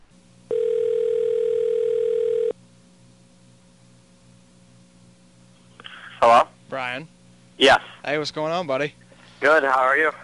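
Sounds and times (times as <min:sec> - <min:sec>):
telephone dial tone while placing a call: 0:00.5 - 0:02.6
speech: 0:07.0 - 0:10.2.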